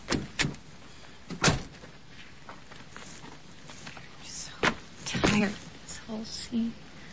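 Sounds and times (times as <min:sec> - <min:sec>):
truck doors slamming shut: 0:00.0 - 0:00.6, 0:01.3 - 0:01.8
quiet outdoor hum: 0:00.0 - 0:07.1
speech: 0:05.4 - 0:06.8.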